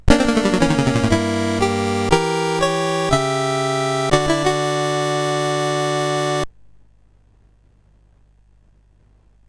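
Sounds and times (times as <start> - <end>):
SID CSG8580R5 sound chip synth: 0.0 - 6.4.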